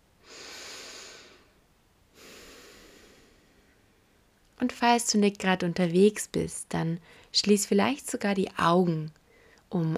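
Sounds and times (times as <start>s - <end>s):
deep breath in and out during a guided meditation: 0.2s - 3.8s
speech: 4.6s - 9.9s.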